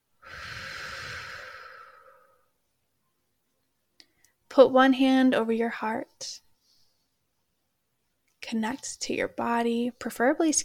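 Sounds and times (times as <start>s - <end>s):
deep breath during a calming exercise: 0.2s - 2.6s
speech: 4.6s - 6.4s, 8.5s - 10.6s.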